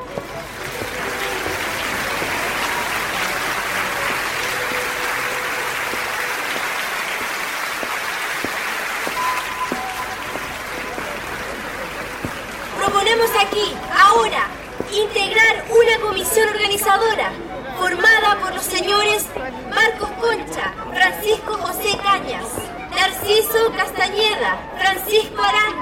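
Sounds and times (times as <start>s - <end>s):
crowd applauding at a public gathering: 0.0s - 15.4s
speech: 13.2s - 25.8s.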